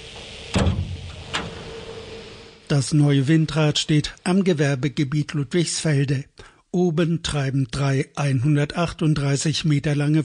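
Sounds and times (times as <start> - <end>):
dark green sheet-metal door at the foot of a wind turbine tower opening: 0.1 - 1.8
speech: 2.7 - 10.2.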